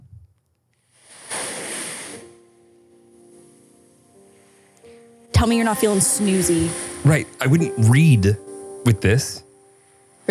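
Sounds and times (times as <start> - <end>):
soft ocean wave washing in: 1.1 - 2.3, 5.6 - 7.4
speech: 5.4 - 9.4.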